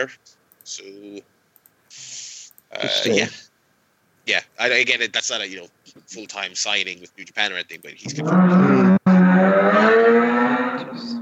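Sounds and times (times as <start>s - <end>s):
speech: 0.0s - 3.5s, 4.2s - 9.5s
car engine revving: 8.1s - 11.2s.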